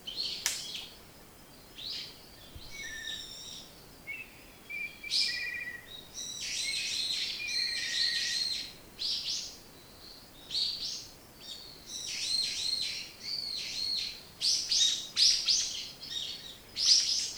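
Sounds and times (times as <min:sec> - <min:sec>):
light background hiss: 0:00.0 - 0:17.3
bird song with quick high chirping bursts and downslurred notes: 0:00.1 - 0:08.2.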